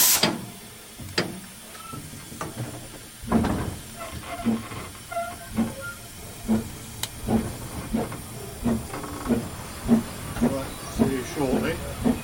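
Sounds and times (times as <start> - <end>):
steam locomotive chuffing on a small railway: 0.0 - 12.2
faint voices: 8.2 - 12.2.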